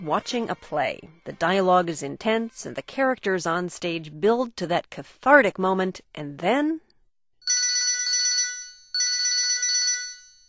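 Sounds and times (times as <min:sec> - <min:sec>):
speech: 0:00.0 - 0:06.8
cell phone ringtone chirping in a theater: 0:07.4 - 0:10.4.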